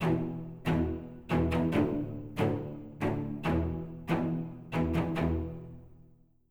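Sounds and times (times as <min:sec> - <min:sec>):
cellos: 0:00.0 - 0:06.2.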